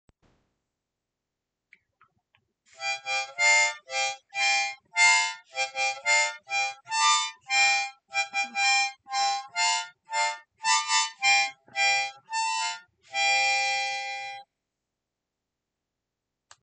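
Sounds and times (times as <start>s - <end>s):
messy harmonica melody: 2.7s - 14.5s.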